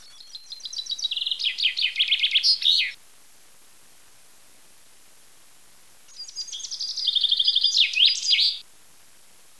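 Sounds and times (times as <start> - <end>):
chaffinch singing: 0.0 - 3.0, 6.1 - 8.6.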